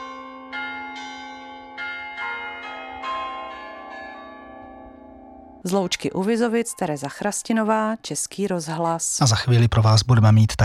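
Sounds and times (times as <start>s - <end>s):
church bells ringing in Loučka u Vizovic: 0.0s - 7.4s
speech: 5.6s - 10.6s.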